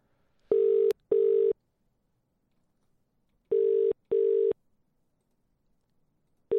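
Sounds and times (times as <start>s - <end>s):
phone ringing tone on the line: 0.5s - 1.6s, 3.5s - 4.6s.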